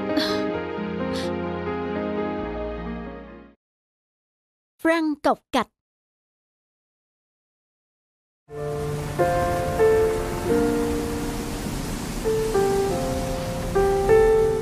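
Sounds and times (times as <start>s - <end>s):
soft music with gentle melodic notes: 0.0s - 3.6s, 8.5s - 14.5s
speech: 4.8s - 5.8s, 8.5s - 9.5s
continuous rain falling: 8.5s - 14.5s.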